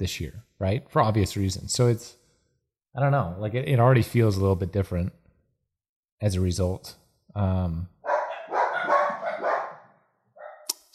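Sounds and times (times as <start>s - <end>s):
speech: 0.0s - 2.2s, 2.9s - 5.2s, 6.2s - 8.0s
dog barking: 8.0s - 10.7s.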